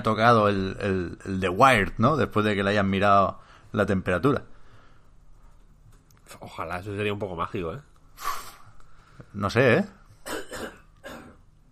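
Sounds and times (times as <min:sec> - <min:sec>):
speech: 0:00.0 - 0:04.5, 0:06.3 - 0:08.4, 0:09.3 - 0:10.0
person coughing: 0:10.2 - 0:11.5.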